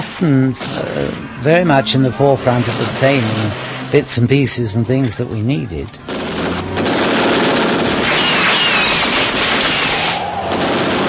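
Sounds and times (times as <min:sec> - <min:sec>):
speech: 0:00.2 - 0:06.3
submachine gun firing in a film scene: 0:06.1 - 0:11.0.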